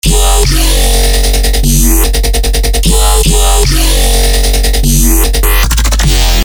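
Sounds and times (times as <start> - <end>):
bass loop: 0.0 - 6.4.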